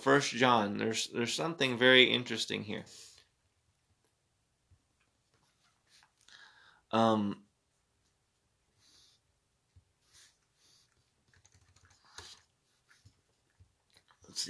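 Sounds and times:
speech: 0:00.0 - 0:03.1, 0:06.9 - 0:07.4
typing on a computer keyboard: 0:10.9 - 0:12.5.

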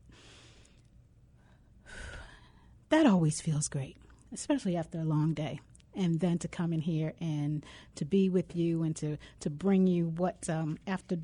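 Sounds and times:
deep breath drawn in: 0:00.1 - 0:02.8
speech: 0:02.9 - 0:11.2.

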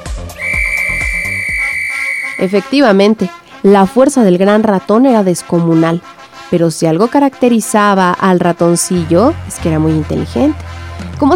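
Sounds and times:
referee-style whistle blast to start a match: 0:00.3 - 0:02.8
speech: 0:02.4 - 0:11.3.

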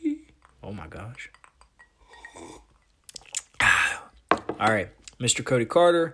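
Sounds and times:
speech: 0:00.8 - 0:01.4, 0:04.6 - 0:06.1
wet lip smacks: 0:03.1 - 0:03.6
soft mouth clicks while sipping peanut butter whiskey: 0:03.1 - 0:03.7.

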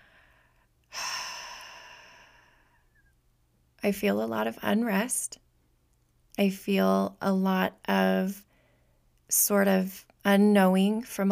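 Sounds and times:
deep breath: 0:00.0 - 0:03.1, 0:08.5 - 0:09.0
speech: 0:03.8 - 0:05.4, 0:06.4 - 0:08.4, 0:09.3 - 0:11.3.

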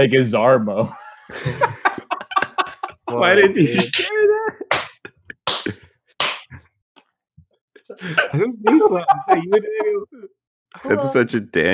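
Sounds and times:
speech: 0:00.0 - 0:01.8, 0:03.1 - 0:04.6, 0:08.0 - 0:11.7
animated voices talking and laughing: 0:00.7 - 0:05.8, 0:07.9 - 0:11.4
hard knee slaps: 0:04.7 - 0:06.5.

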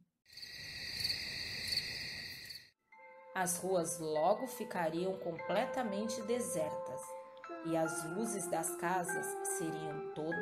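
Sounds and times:
cricket chirping in a shrill trill: 0:00.3 - 0:02.8
speech: 0:03.4 - 0:10.4.

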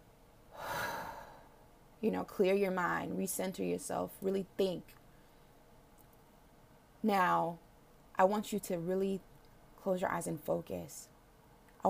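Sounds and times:
deep breath in a guided group breathing exercise: 0:00.5 - 0:01.6
speech: 0:02.0 - 0:05.0, 0:07.0 - 0:07.6, 0:08.2 - 0:11.1.

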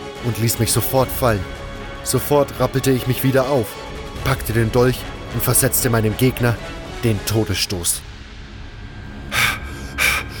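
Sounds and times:
speech: 0:00.2 - 0:08.1
heavy panting after a fight: 0:09.3 - 0:10.3.

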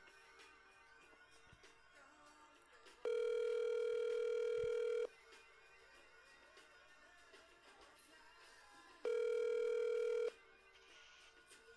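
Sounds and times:
outgoing phone call ringback tone: 0:03.1 - 0:05.1, 0:09.1 - 0:10.3.

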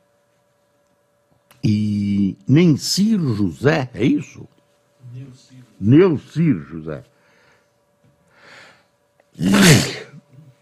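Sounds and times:
speech: 0:01.6 - 0:07.1, 0:09.4 - 0:09.9
person sneezing: 0:09.4 - 0:10.5.

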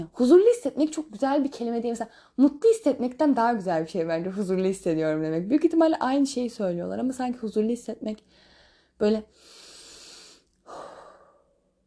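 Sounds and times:
speech: 0:00.0 - 0:09.6
deep breath in and out: 0:08.2 - 0:11.8.

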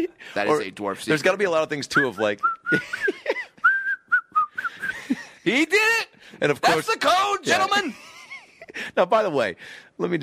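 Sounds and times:
speech: 0:00.0 - 0:03.3, 0:05.5 - 0:08.1, 0:08.8 - 0:10.2
person whistling a short bright tune: 0:02.0 - 0:05.0.

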